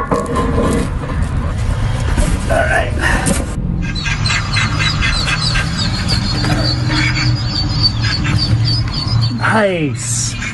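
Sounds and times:
steady low rumble of outdoor noise: 0.0s - 10.5s
duck quacking sounds played to lure ducklings: 3.8s - 8.6s
speech: 9.6s - 10.4s.

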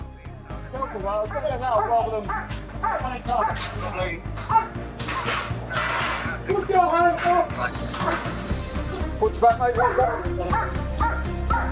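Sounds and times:
female police dog barking and yelping inside a truck: 0.8s - 5.4s, 9.8s - 11.7s
speech: 0.9s - 5.4s, 6.4s - 11.2s.

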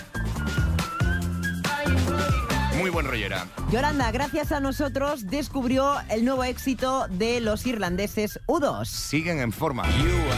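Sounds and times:
whistled melody: 0.0s - 3.1s, 4.1s - 5.9s
full pop band with drums bass and chords: 0.0s - 6.4s, 9.8s - 10.3s
speech: 2.8s - 10.3s.

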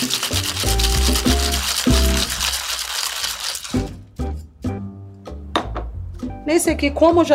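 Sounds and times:
cocktail shaker full of ice shaking a non-alcoholic drink: 0.0s - 4.0s
speech: 6.5s - 7.3s.

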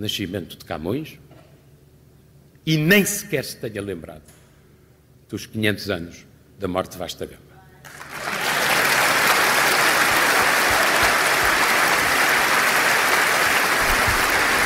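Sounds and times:
speech: 0.0s - 1.3s, 2.6s - 4.4s, 5.3s - 8.0s
large crowd applauding in a standing ovation: 7.9s - 14.6s.

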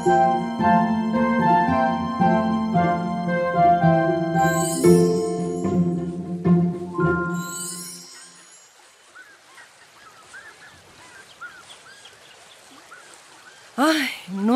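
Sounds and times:
speech: 0.0s - 1.1s
river flowing steadily with a continuous rushing wash: 0.0s - 14.5s
small birds chirping: 7.8s - 14.5s.

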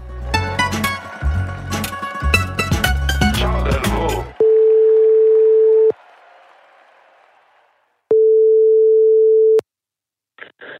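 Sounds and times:
loud music: 0.2s - 4.4s
applause: 3.2s - 8.1s
telephone ringing tone of a call from a studio in Antwerp to a reporter: 4.4s - 5.9s, 8.1s - 9.6s.

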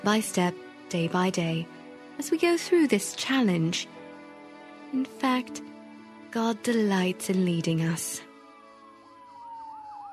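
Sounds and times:
speech: 0.0s - 4.0s, 4.9s - 5.7s, 6.3s - 8.3s
sirens of several fire engines wailing: 7.5s - 10.1s.

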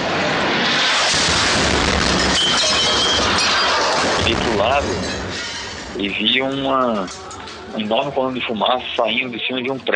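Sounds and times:
loud roaring explosion: 0.0s - 6.9s
shattering debris crackling: 0.7s - 7.7s
speech: 4.3s - 5.2s, 6.0s - 9.9s.

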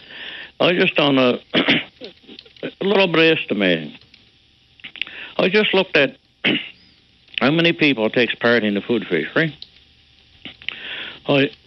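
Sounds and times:
speech: 0.6s - 4.0s, 5.4s - 6.7s, 7.4s - 9.7s, 11.2s - 11.6s
person clearing throat: 1.5s - 2.4s, 6.4s - 6.8s.

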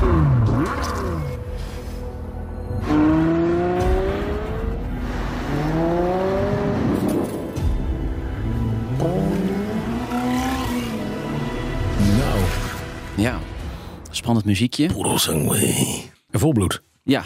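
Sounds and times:
Ferrari V12 engine revving: 0.0s - 1.4s, 2.8s - 12.8s
speech: 14.3s - 17.2s.

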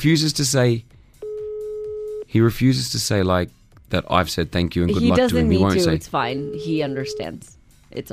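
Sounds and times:
speech: 0.0s - 0.9s, 2.3s - 8.1s
steady flat electronic phone tone of an outgoing call: 1.2s - 2.2s, 5.1s - 7.4s.

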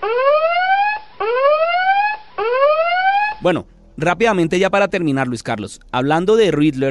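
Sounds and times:
spoiler warning alarm sound effect with rising electronic whoops: 0.0s - 3.4s
speech: 3.4s - 6.9s.

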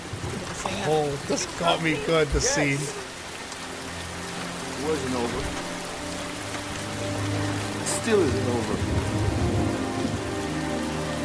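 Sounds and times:
heavy rain: 0.0s - 11.2s
indistinct voices: 0.4s - 3.1s
speech: 0.8s - 3.1s, 4.8s - 5.6s, 8.0s - 9.3s.

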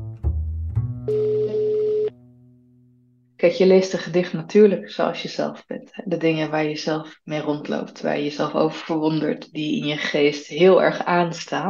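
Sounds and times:
telephone beeps as a call is placed: 1.1s - 2.1s
speech: 3.4s - 11.6s.

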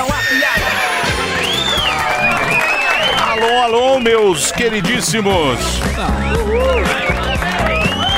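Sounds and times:
crowd cheering and whooping: 0.0s - 4.8s, 5.8s - 8.1s
applause: 1.0s - 4.4s, 6.8s - 8.1s
speech: 3.6s - 7.2s.

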